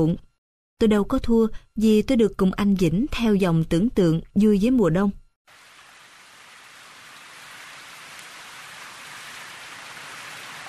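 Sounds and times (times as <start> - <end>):
speech: 0.0 - 5.6
steady heavy rain: 5.5 - 10.6.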